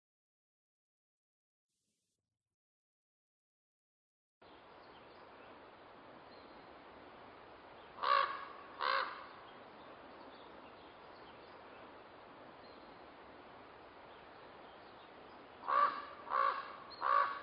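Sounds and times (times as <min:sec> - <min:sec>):
faint hiss: 0:04.4 - 0:17.4
crows cawing: 0:08.0 - 0:09.4, 0:15.6 - 0:17.4.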